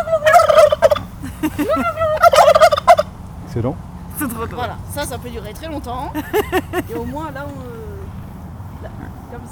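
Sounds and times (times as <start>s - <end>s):
two male turkeys and a female turkey gobbling: 0.0s - 3.2s
laughter: 1.2s - 2.5s, 6.0s - 7.3s
speech: 1.5s - 2.0s, 3.6s - 7.8s, 8.8s - 9.4s.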